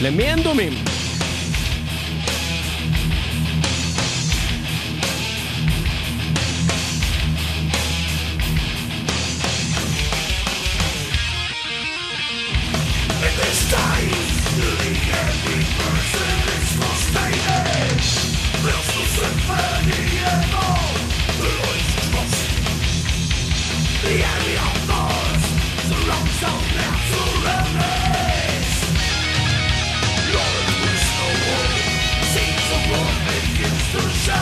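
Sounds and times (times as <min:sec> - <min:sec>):
speech: 0:00.0 - 0:01.0
thrash metal track with fast drums and distorted guitars: 0:00.0 - 0:34.4.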